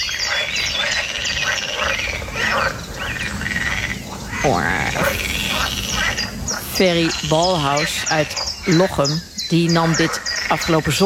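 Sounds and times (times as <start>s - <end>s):
faint bird sounds: 0.0s - 11.0s
pool frogs croaking in a pond: 0.0s - 11.0s
speech: 4.4s - 5.2s, 6.8s - 11.0s.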